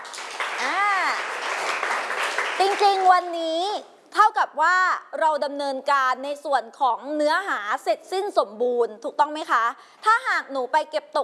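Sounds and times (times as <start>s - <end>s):
many hands clapping for student groups after presentations: 0.0s - 3.4s
speech: 2.6s - 11.2s.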